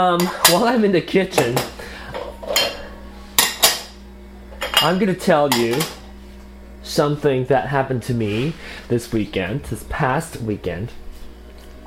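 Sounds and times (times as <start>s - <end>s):
speech: 0.0s - 1.8s, 4.8s - 6.0s, 6.8s - 11.0s
dishes and cutlery clattering as a dishwasher is unloaded in a kitchen: 1.4s - 3.9s, 4.6s - 6.0s.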